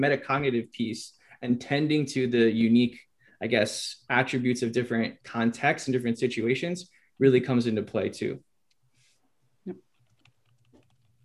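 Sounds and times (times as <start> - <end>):
speech: 0.0 - 8.5, 9.6 - 9.9
typing on a computer keyboard: 9.9 - 11.2.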